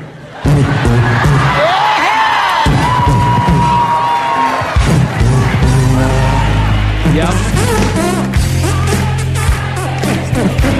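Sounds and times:
large crowd singing and roaring: 0.0 - 10.7.

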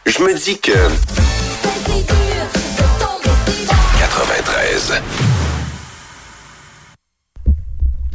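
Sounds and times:
speech: 0.1 - 1.3, 1.9 - 2.6, 4.2 - 5.6
song with heavy pulsing beat and dense instrumentation: 0.8 - 4.6.

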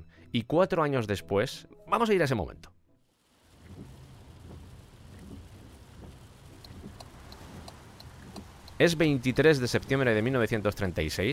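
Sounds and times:
speech: 0.3 - 2.7, 8.8 - 11.3
heavy rain pouring: 3.1 - 11.3
drips and patters of rain: 3.2 - 11.3
deep continuous thunder rumble: 3.5 - 10.7.

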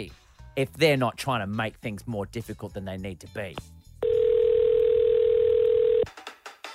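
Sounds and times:
speech: 0.0 - 3.8
telephone dial tone: 4.0 - 6.1.

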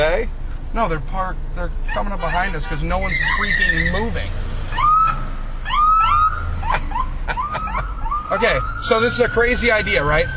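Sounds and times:
speech: 0.0 - 4.5, 8.3 - 10.3
low rumble of idling traffic and engine noise: 0.0 - 10.3
ambulance siren wailing: 4.7 - 10.3.

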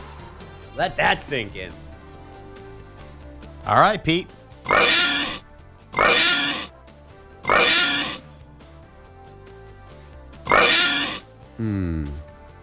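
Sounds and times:
speech: 0.8 - 1.9, 3.6 - 5.2
pig oinking: 4.6 - 6.7, 7.4 - 8.2, 10.4 - 11.3
pig squealing grunt: 4.6 - 6.7, 7.4 - 8.2, 10.5 - 12.2.

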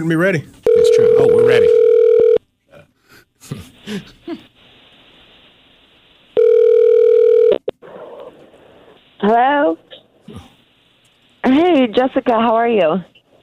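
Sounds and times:
speech: 0.0 - 1.8, 3.5 - 4.5, 9.2 - 10.5, 11.6 - 13.1
telephone dial tone as a call is dialed: 0.7 - 2.4, 6.4 - 7.6.

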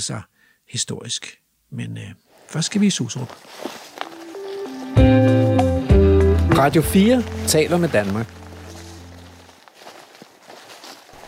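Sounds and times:
speech: 0.0 - 3.8, 6.6 - 8.4
footsteps walking deeper into a forest: 2.3 - 11.2.

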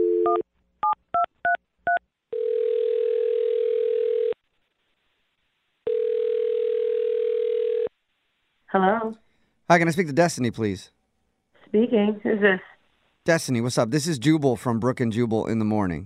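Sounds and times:
phone line tone: 0.0 - 0.4, 2.3 - 4.4, 5.9 - 7.9
speech: 0.3 - 0.5, 8.7 - 11.0, 11.7 - 16.0.

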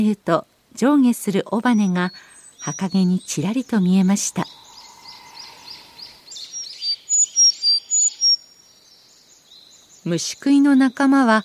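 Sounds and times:
speech: 0.0 - 4.6, 10.1 - 11.4
Sakhalin leaf warbler singing high thin repeated notes: 0.0 - 11.4.

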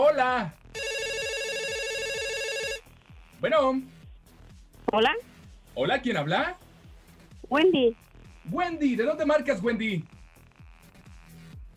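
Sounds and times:
speech: 0.2 - 0.6, 3.4 - 4.0, 4.9 - 6.6, 7.5 - 10.1
telephone ringing for an incoming call: 0.8 - 2.9.

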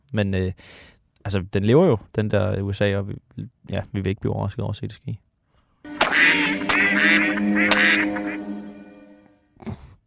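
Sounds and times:
speech: 0.1 - 5.2
ducks quacking: 5.9 - 8.8.

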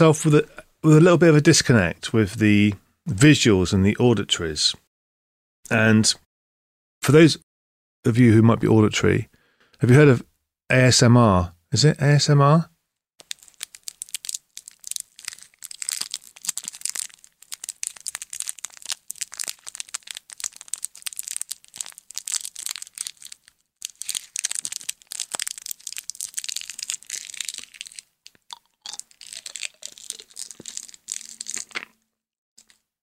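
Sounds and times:
speech: 0.0 - 4.8, 5.7 - 6.2, 7.0 - 7.4, 8.0 - 12.7
sweet wrapper crinkling as a sweet is unwrapped: 13.2 - 32.0, 32.6 - 32.9.

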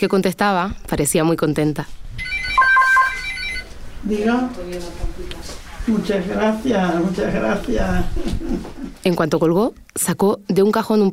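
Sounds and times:
speech: 0.0 - 2.0, 4.0 - 11.1
home telephone ringing with electronic warbling tone: 2.2 - 3.7.

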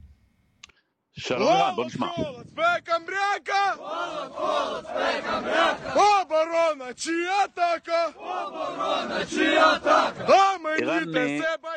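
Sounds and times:
speech: 1.2 - 11.7
Ukrainian soldiers chanting in unison: 3.4 - 6.3, 7.4 - 11.7.

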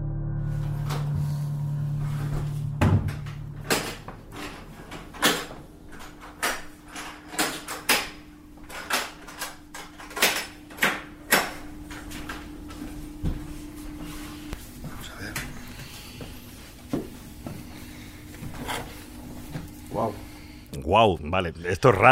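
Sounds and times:
steady low hum: 0.0 - 20.7
knocks and clunks of boxes of old documents being handled: 2.3 - 8.0
speech: 20.9 - 22.1.

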